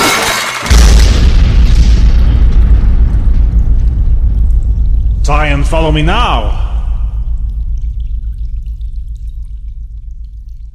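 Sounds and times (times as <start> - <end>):
dropped bombs exploding in a dramatized attack: 0.6 - 7.4
single loud deep bomb boom: 0.6 - 10.7
long heavy rumble after bomb explosion: 0.7 - 10.7
speech: 5.4 - 6.6.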